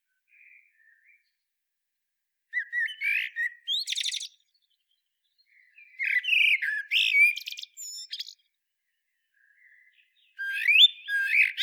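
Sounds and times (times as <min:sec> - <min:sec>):
Eurasian blackbird Turdus merula whistling song: 0:02.6 - 0:04.5, 0:05.5 - 0:08.4, 0:09.6 - 0:11.6.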